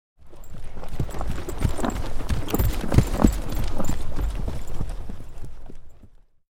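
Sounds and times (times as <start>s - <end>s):
single horse trotting past: 0.2s - 6.2s.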